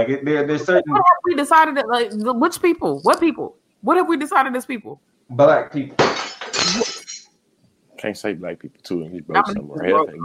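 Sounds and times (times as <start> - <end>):
speech: 0.0 - 6.9, 8.0 - 10.2
laughter: 0.4 - 1.4, 9.3 - 10.2
champagne glass shattering with fragments tinkling and scattering: 6.0 - 7.3.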